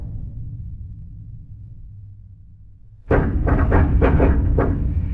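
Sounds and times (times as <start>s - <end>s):
deep rumble: 3.1s - 5.1s
metal pipes rattling and knocking: 3.1s - 5.1s.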